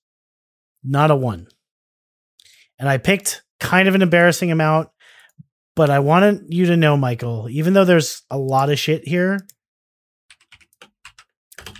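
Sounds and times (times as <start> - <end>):
speech: 0.8 - 1.5, 2.8 - 4.9, 5.8 - 9.6
typing a message on a computer keyboard: 10.3 - 11.7.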